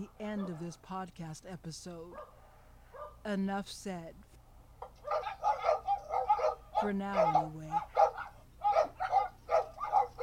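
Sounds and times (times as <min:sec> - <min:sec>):
speech: 0:00.0 - 0:02.4, 0:03.2 - 0:04.3, 0:06.8 - 0:08.0
dog barking: 0:00.3 - 0:00.7, 0:02.1 - 0:03.2, 0:04.9 - 0:10.2.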